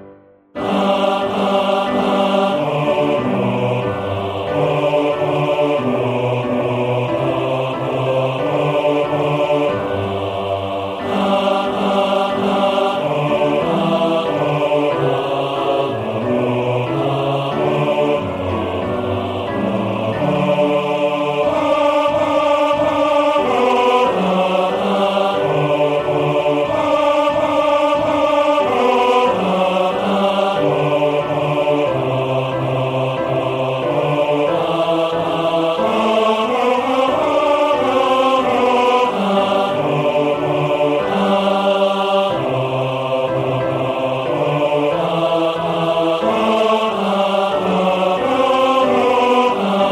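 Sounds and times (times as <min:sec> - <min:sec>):
male choir bass voices singing: 0:00.6 - 0:49.9.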